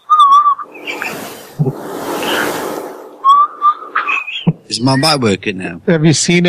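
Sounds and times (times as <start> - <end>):
person whistling a piercing 2600 hertz tone imitating a phone signal tone: 0.0 - 1.2, 3.2 - 4.5
speech: 1.6 - 1.9, 4.7 - 6.4.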